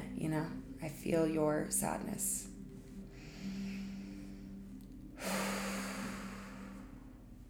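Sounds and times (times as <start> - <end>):
speech: 0.2 - 2.5
person taking slow deep breaths: 3.0 - 7.3.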